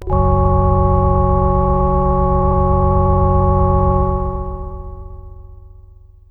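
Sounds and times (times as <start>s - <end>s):
synth radio tone chord: 0.0s - 5.6s.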